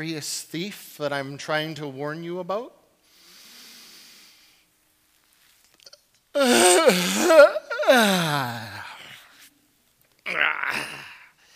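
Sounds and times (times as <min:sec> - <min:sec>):
speech: 0:00.0 - 0:02.8, 0:06.4 - 0:08.7, 0:10.3 - 0:11.0
person yawning exaggeratedly: 0:06.4 - 0:09.4, 0:10.2 - 0:11.4.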